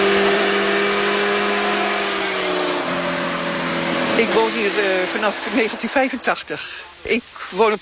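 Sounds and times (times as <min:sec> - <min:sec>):
motorcycles roaring at full throttle over speed bumps on a road through a nature area: 0:00.0 - 0:06.2
speech: 0:04.2 - 0:07.8.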